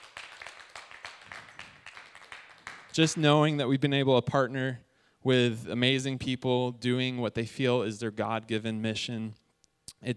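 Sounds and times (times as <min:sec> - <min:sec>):
audience clapping: 0:00.0 - 0:03.2
speech: 0:03.0 - 0:09.4.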